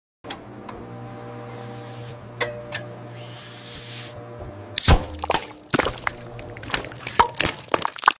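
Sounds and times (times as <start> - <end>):
soda can being crushed: 4.8 - 8.1.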